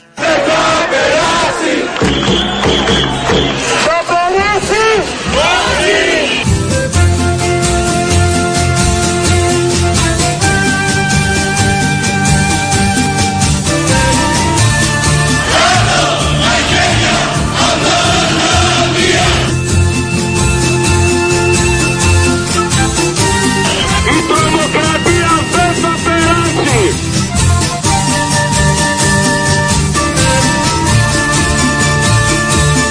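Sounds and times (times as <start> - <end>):
large protest crowd chanting slogans in rhythmic unison: 0.0 - 2.6, 5.2 - 6.4, 15.4 - 19.6
steady music: 0.0 - 32.8.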